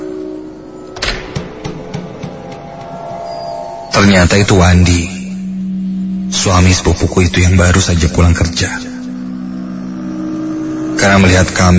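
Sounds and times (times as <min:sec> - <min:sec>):
low steady hum: 0:00.0 - 0:11.7
front door opening thump: 0:01.0 - 0:03.2
speech: 0:03.9 - 0:05.2, 0:06.3 - 0:08.9, 0:11.0 - 0:11.7.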